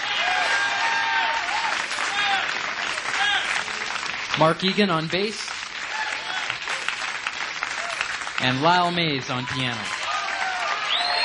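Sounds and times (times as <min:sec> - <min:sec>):
live concert audience applause: 0:00.0 - 0:11.2
speech: 0:04.4 - 0:05.5, 0:08.4 - 0:10.0
audience whistles: 0:10.8 - 0:11.2.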